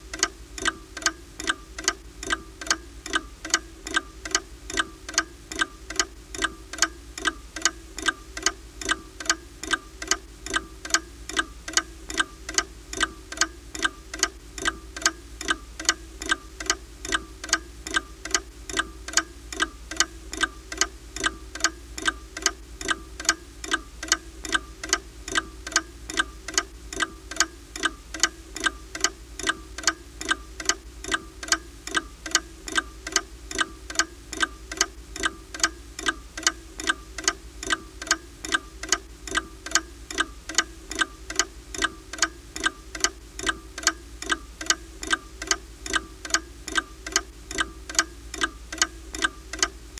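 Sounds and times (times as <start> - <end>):
mantel clock interior ticks: 0.0 - 49.9.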